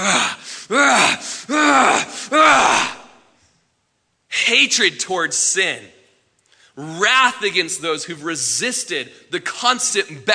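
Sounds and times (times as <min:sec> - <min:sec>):
speech: 0:00.0 - 0:01.2, 0:04.6 - 0:06.0, 0:06.8 - 0:10.3
voice imitating hard heavy breathing: 0:00.0 - 0:02.4.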